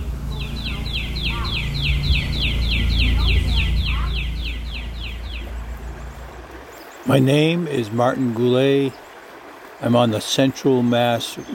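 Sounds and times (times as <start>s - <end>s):
constant low rumble: 0.0s - 6.9s
backyard birds in Gulfport Mississippi chirping: 0.0s - 11.5s
speech: 7.1s - 9.0s, 9.8s - 11.5s.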